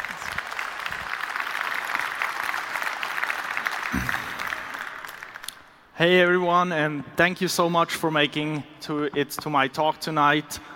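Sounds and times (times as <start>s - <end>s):
applause from a sizable audience: 0.0s - 5.6s
speech: 6.0s - 10.7s.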